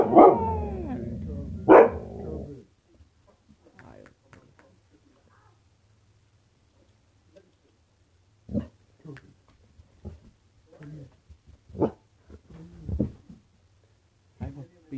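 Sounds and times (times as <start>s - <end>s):
puppy barking: 0.0s - 1.0s, 1.6s - 2.3s.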